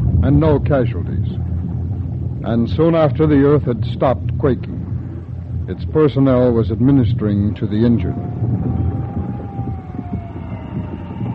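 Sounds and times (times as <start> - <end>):
heavy rumbling background in a darkened city: 0.0 - 11.3
speech: 0.2 - 1.4, 2.4 - 4.8, 5.7 - 8.6
siren wailing in a city after an earthquake: 8.0 - 11.3.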